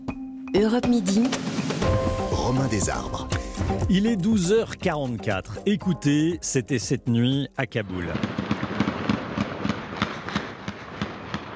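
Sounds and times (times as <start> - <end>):
speech: 0.5 - 8.4
celebratory automatic weapon fire: 8.2 - 11.5.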